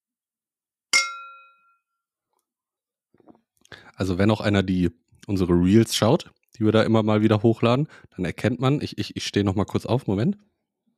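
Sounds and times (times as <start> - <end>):
glasses clinking in a toast: 1.0 - 1.8
speech: 4.0 - 10.5.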